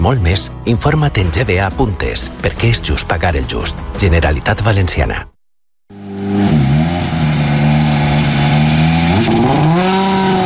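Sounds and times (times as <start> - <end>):
speech: 0.0 - 5.3
rally car engine revving on a dirt course: 5.9 - 10.4.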